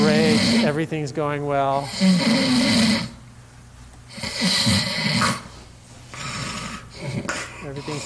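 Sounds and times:
loud rattling snores: 0.0 - 0.8, 1.8 - 3.2, 4.1 - 5.5, 6.2 - 8.0
speech: 0.7 - 3.1, 4.4 - 5.4, 7.7 - 8.0.

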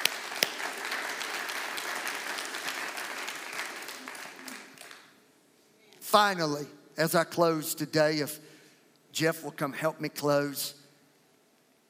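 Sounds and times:
audience clapping hands: 0.0 - 5.2
speech: 6.1 - 8.5, 9.2 - 10.8.

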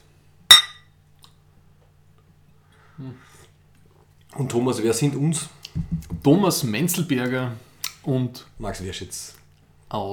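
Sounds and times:
glasses clinking in a toast: 0.5 - 0.9
speech: 3.0 - 3.5, 4.4 - 10.1.

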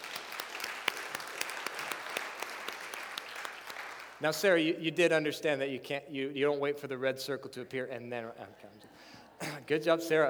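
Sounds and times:
small group applauding: 0.0 - 4.2
speech: 4.2 - 10.2.

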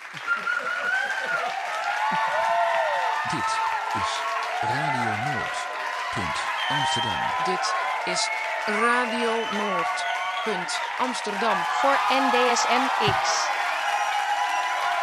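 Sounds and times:
audience applause: 0.0 - 15.0
cheering: 0.0 - 15.0
laughter: 0.1 - 1.5
speech: 3.3 - 13.6.

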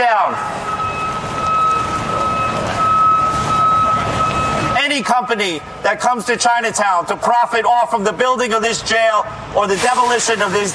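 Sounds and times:
truck reversing alarm high-pitched beep: 0.0 - 5.0
noisy outdoor protest crowd in Chinatown: 0.0 - 10.7
truck engine rumbling: 0.2 - 10.7
speech: 5.1 - 10.7.

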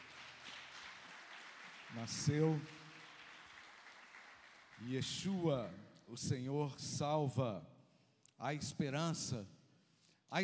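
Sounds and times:
audience clapping: 0.0 - 5.6
speech: 1.9 - 2.8, 4.8 - 7.7, 8.4 - 9.6, 10.3 - 10.4.

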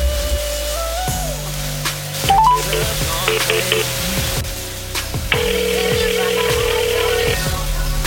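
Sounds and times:
low rhythmic musical backing: 0.0 - 8.0
phone number dialed with touch-tone beeps: 2.3 - 3.9, 5.4 - 7.3.

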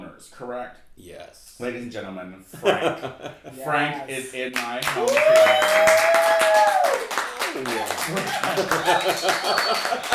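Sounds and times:
speech: 0.2 - 10.1
laughter: 2.6 - 3.6, 7.2 - 10.1
crowd applauding: 4.6 - 10.1
voices whooping and calling out: 5.0 - 10.1.

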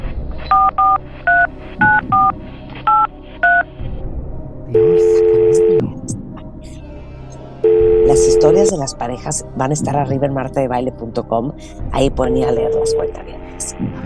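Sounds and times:
telephone keypad dialing tones as a phone call is placed: 0.5 - 2.3, 4.9 - 5.8, 7.7 - 8.7, 12.4 - 13.2
steady telephone tone: 4.8 - 5.8, 7.7 - 8.7, 12.3 - 13.2
speech: 8.4 - 13.9.

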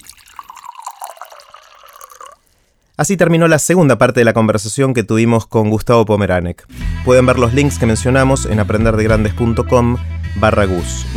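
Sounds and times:
water pouring into a glass: 0.0 - 2.9
speech: 3.0 - 11.1.

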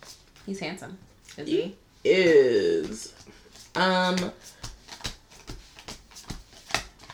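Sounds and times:
speech: 0.5 - 4.6
deck of cards being shuffled: 3.1 - 7.1.

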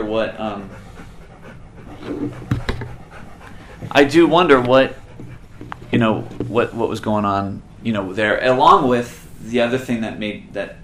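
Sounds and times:
dog panting heavily: 0.0 - 6.9
speech: 0.1 - 0.8, 2.0 - 2.6, 3.8 - 5.0, 5.9 - 10.8.

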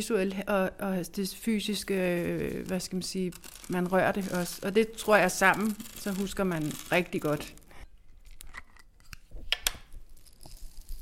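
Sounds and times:
speech: 0.0 - 7.6
hundreds of sunflower seeds rattling: 1.7 - 8.6, 9.9 - 11.0.

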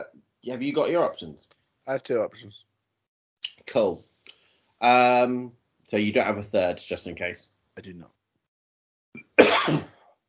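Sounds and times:
speech: 0.0 - 2.7, 3.4 - 4.1, 4.8 - 8.2
person coughing: 9.2 - 10.1.

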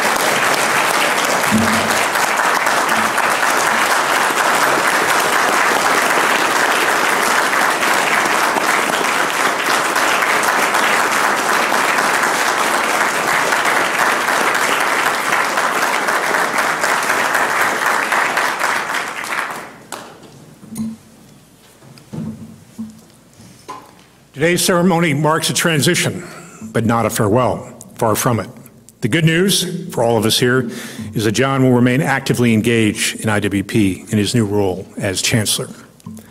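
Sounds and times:
large audience applause: 0.0 - 20.1
speech: 24.4 - 35.8.

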